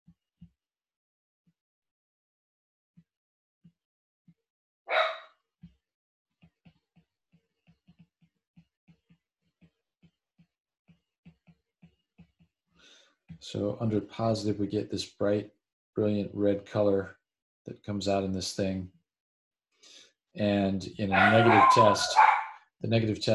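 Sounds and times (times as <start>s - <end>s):
dog barking: 4.9s - 5.3s, 21.1s - 22.6s
speech: 13.4s - 19.0s, 19.8s - 23.3s.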